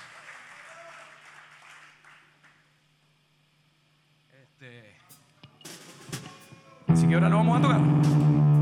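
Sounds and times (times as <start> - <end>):
audience applause at a blues festival: 0.0 - 2.7
speech: 4.6 - 5.0, 6.9 - 8.5.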